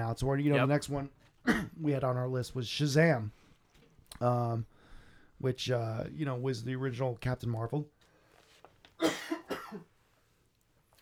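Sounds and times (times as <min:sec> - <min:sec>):
speech: 0:00.1 - 0:03.4, 0:04.1 - 0:04.7, 0:05.4 - 0:08.0, 0:09.0 - 0:09.9
harsh coughing fit: 0:01.4 - 0:01.8, 0:09.0 - 0:09.9.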